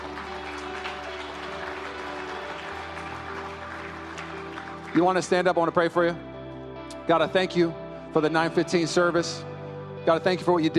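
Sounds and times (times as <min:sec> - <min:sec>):
audience applause: 0:00.0 - 0:05.8
speech: 0:04.9 - 0:06.3, 0:07.1 - 0:10.7.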